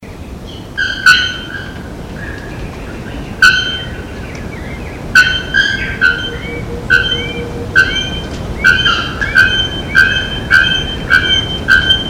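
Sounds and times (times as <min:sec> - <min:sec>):
bare-throated bellbird metallic bock calls in Itatiaia National Park, Brazil: 0:05.2 - 0:12.0.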